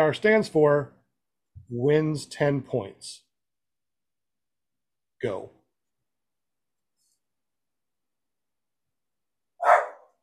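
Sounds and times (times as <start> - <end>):
speech: 0.0 - 1.0, 1.7 - 3.2, 5.2 - 5.6
dog barking: 9.6 - 10.2.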